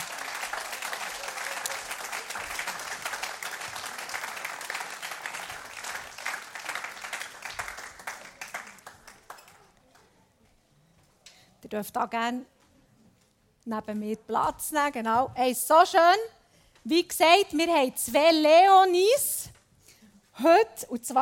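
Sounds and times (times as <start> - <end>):
audience applauding: 0.0 - 10.1
speech: 11.7 - 12.6, 13.6 - 19.3, 20.4 - 21.2.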